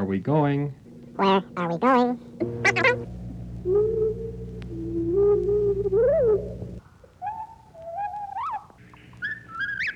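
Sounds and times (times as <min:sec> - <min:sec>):
low steady hum: 0:00.0 - 0:07.2
speech: 0:00.1 - 0:04.4, 0:05.2 - 0:06.6.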